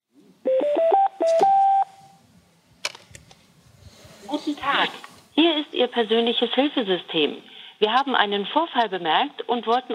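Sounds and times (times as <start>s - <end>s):
low noise: 0.0s - 9.9s
telephone keypad tones dialing a number: 0.5s - 2.0s
speech: 5.4s - 9.9s.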